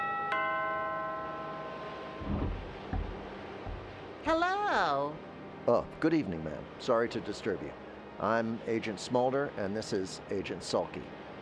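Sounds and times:
doorbell chime: 0.0s - 2.5s
dull low thumps: 2.2s - 4.0s
speech: 4.3s - 11.2s.

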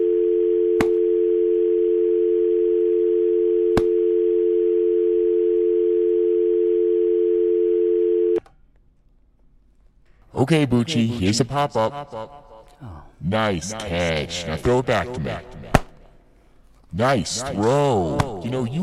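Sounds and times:
continuous telephone dial tone: 0.0s - 8.4s
speech: 10.4s - 15.6s, 16.9s - 18.8s.

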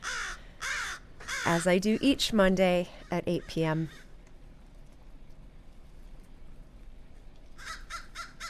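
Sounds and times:
crows cawing while being fed: 0.0s - 1.6s, 3.9s - 4.2s, 7.6s - 8.4s
steady low outdoor rumble: 0.0s - 8.4s
speech: 1.5s - 4.0s.

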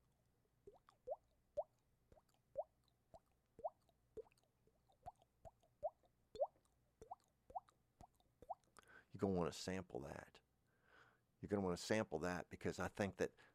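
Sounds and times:
water dripping onto a surface: 0.5s - 8.9s
speech: 9.2s - 10.4s, 11.4s - 13.5s.

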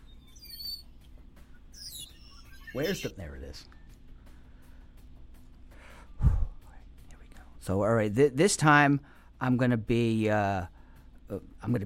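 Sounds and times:
birds chirping with high twittering calls: 0.0s - 3.2s
speech: 2.8s - 3.8s, 7.7s - 11.8s.

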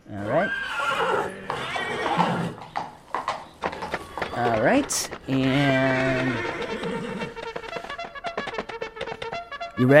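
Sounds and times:
horse whinnying at a race starting post: 0.1s - 4.5s, 5.3s - 7.6s
horse hoof clops: 1.2s - 9.9s
speech: 4.7s - 6.5s, 9.8s - 9.9s.

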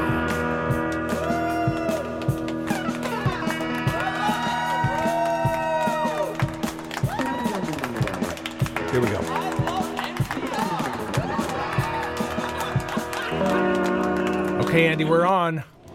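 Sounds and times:
sharp claps and bangs: 0.3s - 15.2s
crowd cheering and whooping with echo: 1.1s - 8.2s, 10.4s - 13.9s
laughter: 9.7s - 14.2s
speech: 14.8s - 15.7s.

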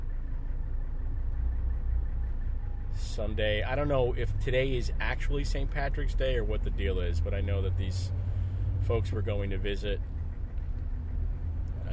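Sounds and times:
car engine drone inside a moving car: 0.0s - 11.9s
road rumble inside a moving car in light traffic: 0.0s - 11.9s
speech: 3.2s - 10.1s.

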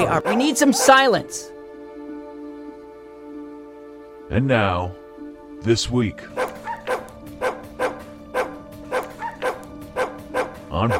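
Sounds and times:
dog barking: 0.0s - 1.1s, 6.3s - 10.9s
speech: 0.0s - 1.5s, 4.3s - 5.0s, 5.6s - 6.6s, 10.8s - 10.9s.

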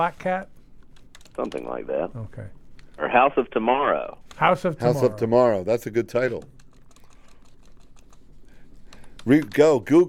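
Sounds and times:
speech: 0.0s - 0.6s, 1.4s - 6.6s, 9.2s - 10.0s
keyboard typing: 0.8s - 1.7s, 6.2s - 9.8s.

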